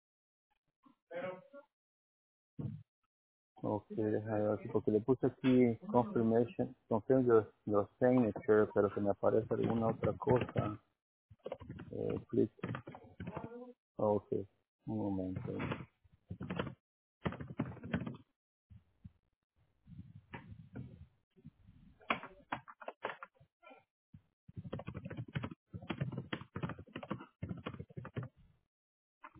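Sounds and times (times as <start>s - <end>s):
speech: 3.6s - 16.8s
typing on a computer keyboard: 9.6s - 10.8s, 11.4s - 13.5s, 16.4s - 18.2s, 24.6s - 28.3s.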